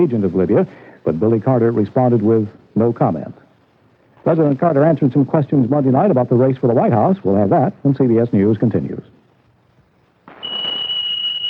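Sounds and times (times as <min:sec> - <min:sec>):
speech: 0:00.0 - 0:03.4, 0:04.2 - 0:09.1
smoke alarm set off by cigarette smoke: 0:10.3 - 0:11.4.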